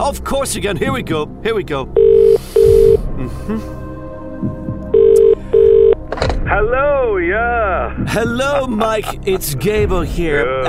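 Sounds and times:
speech: 0.1 - 3.8, 6.5 - 10.6
phone line ringing in double-burst tones: 2.0 - 3.0, 4.9 - 6.0
laughter: 8.0 - 10.6.

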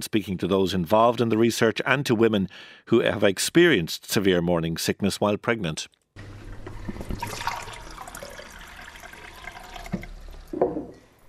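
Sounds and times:
speech: 0.0 - 6.3
water pouring into a glass: 6.2 - 11.2.

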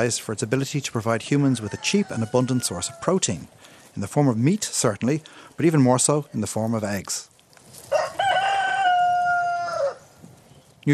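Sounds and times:
speech: 0.0 - 7.3
domestic rooster crowing: 1.5 - 3.2, 7.9 - 10.1.

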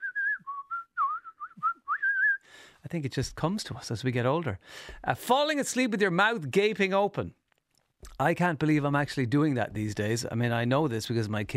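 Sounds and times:
person whistling in vibrato style of a painter-decorator: 0.0 - 2.4
speech: 2.8 - 7.4, 8.2 - 11.5.

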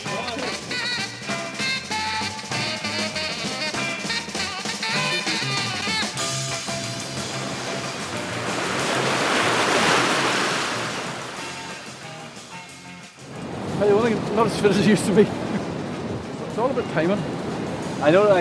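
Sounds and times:
surf breaking on a beach strand: 0.0 - 18.3
musical tone: 0.1 - 9.2
speech: 14.1 - 15.4, 16.7 - 17.4, 18.0 - 18.3.

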